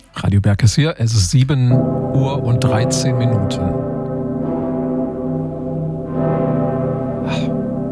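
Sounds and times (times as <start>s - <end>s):
speech: 0.3s - 4.0s
Cologne Cathedral bells ringing in a peal in Germany: 1.7s - 7.8s.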